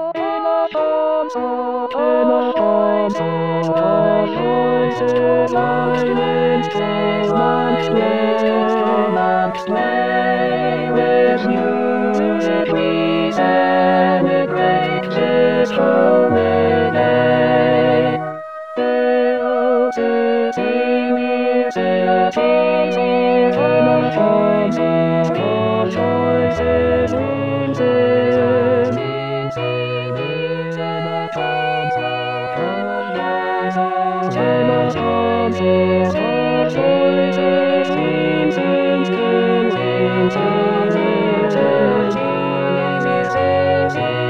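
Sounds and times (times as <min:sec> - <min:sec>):
slow orchestral tutti: 0:00.2 - 0:44.2.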